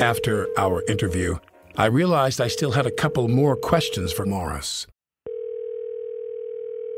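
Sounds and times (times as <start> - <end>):
telephone ringing tone of outgoing call: 0.0 - 1.4, 2.4 - 4.6, 5.3 - 6.9
speech: 0.0 - 4.9.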